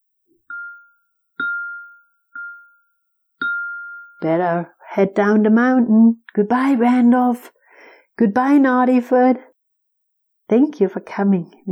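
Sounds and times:
bell being struck: 0:00.5 - 0:04.4
speech: 0:04.2 - 0:07.6, 0:08.2 - 0:09.5, 0:10.5 - 0:11.7.

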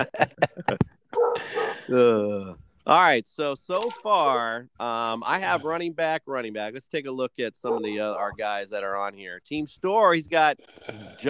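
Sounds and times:
laughter: 0:00.0 - 0:00.8
speech: 0:00.0 - 0:00.8, 0:01.9 - 0:11.2
dog barking: 0:01.2 - 0:01.9, 0:07.7 - 0:08.0.

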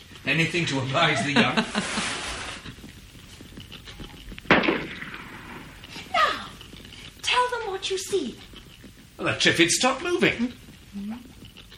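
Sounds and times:
speech: 0:00.2 - 0:02.2, 0:07.9 - 0:08.5, 0:09.2 - 0:10.6
revolver fired into the air from a window: 0:04.5 - 0:05.7.

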